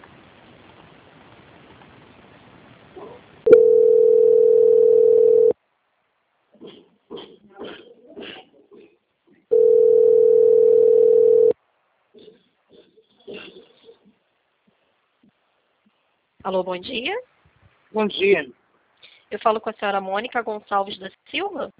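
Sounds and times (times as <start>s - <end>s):
telephone line tones during a call transfer: 3.5s - 5.6s, 9.5s - 11.6s
speech: 16.5s - 17.3s, 17.9s - 18.6s, 19.3s - 21.7s.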